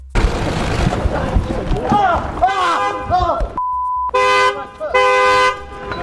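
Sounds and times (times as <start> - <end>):
noisy crowd voices clamouring: 0.7 - 3.6
car horn tooting in long loud blasts: 2.4 - 6.0
short car horn beep: 2.8 - 6.0.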